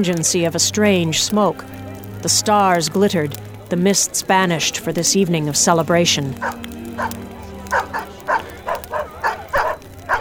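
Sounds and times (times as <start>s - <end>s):
speech: 0.0s - 7.2s
pack of dogs barking: 6.0s - 10.1s.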